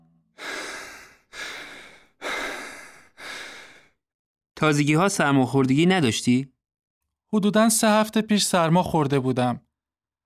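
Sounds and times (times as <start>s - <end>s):
deep airy breathing in and out: 0.4s - 4.0s
speech: 4.6s - 6.6s, 7.3s - 9.6s.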